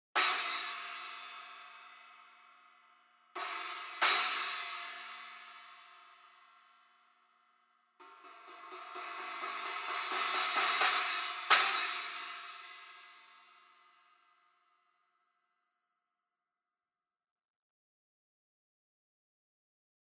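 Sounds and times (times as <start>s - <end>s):
resonant crash cymbal: 0.2s - 2.8s, 3.4s - 6.5s, 8.0s - 14.2s.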